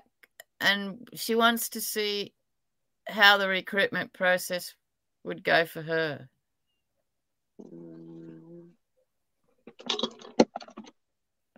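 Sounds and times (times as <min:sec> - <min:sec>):
speech: 0:00.6 - 0:02.4, 0:03.1 - 0:06.4
person humming: 0:07.6 - 0:08.8.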